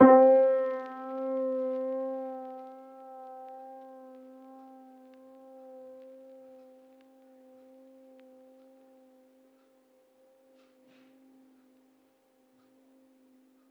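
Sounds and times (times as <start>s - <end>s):
lofi piano: 0.0s - 3.8s.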